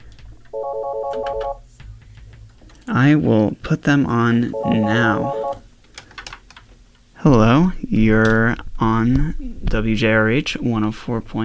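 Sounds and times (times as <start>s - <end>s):
low hum: 0.0s - 11.4s
telephone ringing with incoming call to a college radio phone line: 0.5s - 1.6s, 4.5s - 5.6s
speech: 0.6s - 1.6s, 2.9s - 5.6s, 7.2s - 11.4s.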